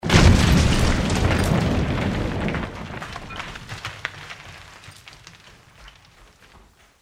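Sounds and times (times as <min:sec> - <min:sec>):
crash in an experiment: 0:00.0 - 0:05.0.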